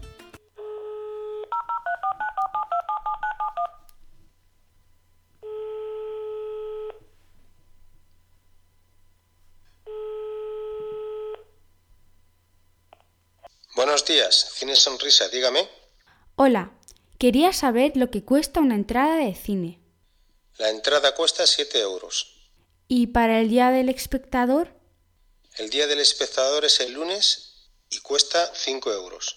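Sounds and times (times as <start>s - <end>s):
phone ringing tones: 0.0s - 3.9s, 5.4s - 7.9s, 9.8s - 11.8s
phone line dial tone: 0.6s - 4.1s, 5.4s - 8.2s, 9.7s - 11.8s
phone keypad beeps dialing a number: 1.5s - 3.8s
speech: 13.9s - 15.8s, 16.4s - 19.8s, 20.6s - 24.8s, 25.6s - 29.3s.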